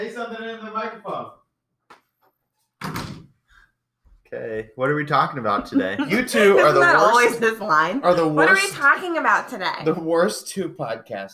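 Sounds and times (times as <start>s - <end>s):
speech: 0.0s - 1.4s, 4.3s - 11.3s
door closing with a solid thud: 2.8s - 3.4s
laughter: 5.2s - 7.6s.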